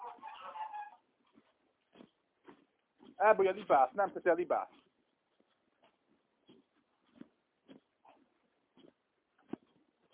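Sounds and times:
large rooster clucking on a nest: 0.0s - 1.0s
soft rustling: 0.0s - 10.1s
speech: 3.2s - 4.8s.

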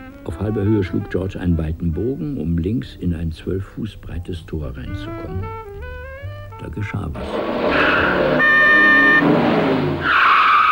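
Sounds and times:
speech: 0.2s - 5.6s, 6.6s - 10.3s
car engine roaring: 7.1s - 10.6s
car horn blaring: 7.2s - 10.0s
rushing screeching surge of approaching car: 7.2s - 10.6s.

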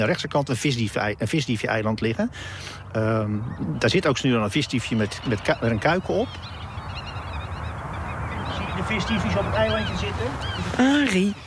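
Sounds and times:
speech: 0.0s - 6.6s, 8.8s - 11.4s
black-tailed godwit calling in a meadow: 2.5s - 11.4s.

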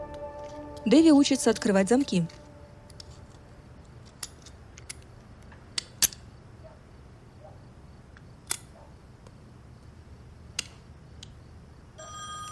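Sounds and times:
speech: 0.9s - 2.4s
telephone ringing with bright electronic tone: 12.0s - 12.5s.

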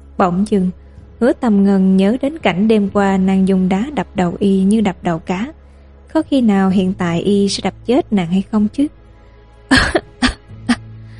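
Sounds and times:
speech: 0.2s - 9.0s
frail young woman coughing lightly: 9.7s - 10.8s.

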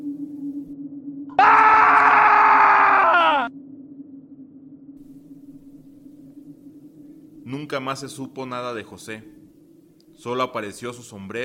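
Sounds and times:
low steady hum: 0.0s - 1.9s, 3.5s - 11.4s
man screaming: 1.4s - 3.5s
speech: 7.7s - 9.4s, 10.2s - 11.4s.

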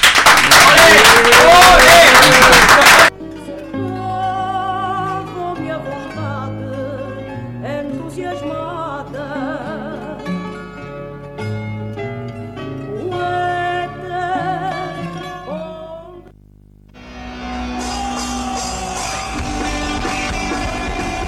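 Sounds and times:
audience applauding at an anniversary celebration in a park: 0.0s - 3.1s, 17.6s - 21.2s
music: 3.1s - 16.3s, 16.9s - 21.2s
audience shouting at an anniversary celebration in a park: 17.7s - 21.2s.

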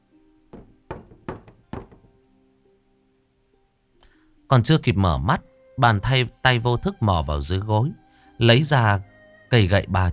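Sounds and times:
knocking on a door: 0.6s - 2.2s
speech: 4.5s - 10.1s.

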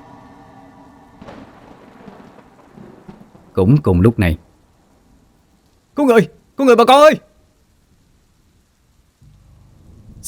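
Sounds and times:
deep low thunder rumble: 0.0s - 5.3s, 9.4s - 10.2s
heavy rain during a night downpour over a poor village: 0.0s - 10.2s
speech: 3.6s - 4.4s, 6.0s - 7.3s.

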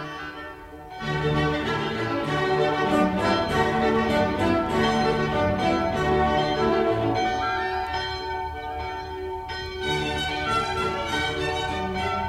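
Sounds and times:
Angelus church bell ringing in a small Hesse village: 0.2s - 12.2s.

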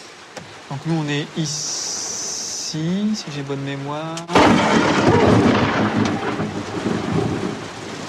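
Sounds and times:
steady hiss of rain during a mountain storm: 0.0s - 8.0s
speech: 0.7s - 2.0s, 2.7s - 6.5s
thunder from lightning striking close by during a storm inside the cloud: 4.2s - 8.0s.

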